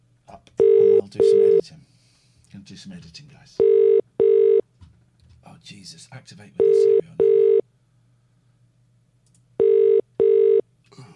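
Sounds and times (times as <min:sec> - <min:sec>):
telephone ringback tone with double-pulse buzzing: 0:00.6 - 0:01.6, 0:03.6 - 0:04.6, 0:06.6 - 0:07.6, 0:09.6 - 0:10.6
speech: 0:02.6 - 0:04.0, 0:05.6 - 0:07.2.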